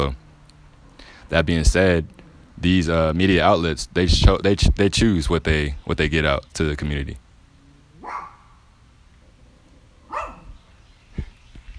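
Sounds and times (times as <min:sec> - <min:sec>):
faint hum: 0:00.0 - 0:11.7
speech: 0:01.3 - 0:07.2
neighbor's dogs barking: 0:07.5 - 0:11.3.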